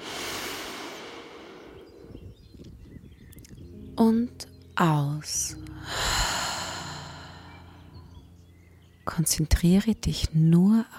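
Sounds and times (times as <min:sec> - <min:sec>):
deep slow breath during a guided breathing exercise: 0:00.0 - 0:02.3, 0:05.8 - 0:08.0
speech: 0:04.0 - 0:06.0, 0:09.2 - 0:10.9.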